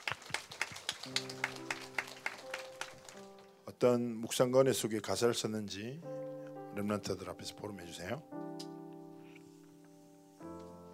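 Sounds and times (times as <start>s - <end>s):
audience clapping in a rhythmic beat: 0.0s - 3.5s
speech: 1.0s - 1.5s, 3.8s - 6.2s, 6.8s - 8.4s.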